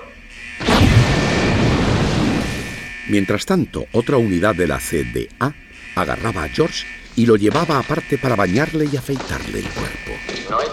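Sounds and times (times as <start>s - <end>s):
controlled detonation of a sock with rumbling roar: 0.6s - 2.8s
speech: 3.1s - 10.7s.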